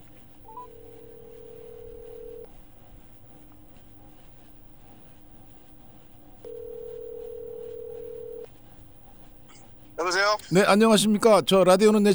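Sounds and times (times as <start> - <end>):
constant hum: 0.0 - 12.1
telephone tones as a call is dialed and connected: 0.4 - 2.5, 6.4 - 8.5
speech: 10.0 - 12.1.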